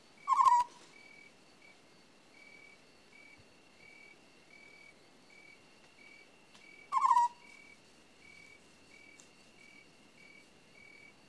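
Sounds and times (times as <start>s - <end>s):
quiet chirps: 0.0s - 11.2s
African scops owl purred trill: 0.2s - 1.3s, 6.8s - 9.8s.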